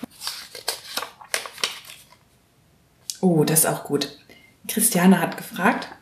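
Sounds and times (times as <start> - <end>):
paper slip rustling as drawn from a pile: 0.0 - 2.2
speech: 3.2 - 5.9.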